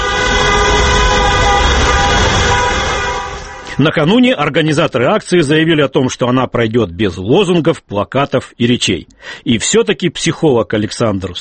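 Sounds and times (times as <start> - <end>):
car horns of passing cars blaring: 0.0 - 4.4
low rumble of traffic: 0.0 - 5.4
speech: 3.8 - 11.3.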